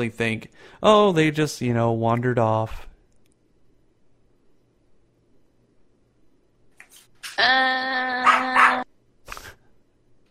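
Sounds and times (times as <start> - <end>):
speech: 0.0 - 2.9, 7.4 - 8.3
dog barking: 8.2 - 8.9.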